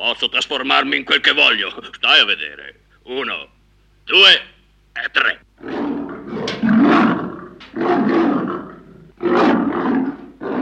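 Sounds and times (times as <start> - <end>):
speech: 0.0 - 5.8
lion roaring in deep rumbling bursts: 5.6 - 10.5.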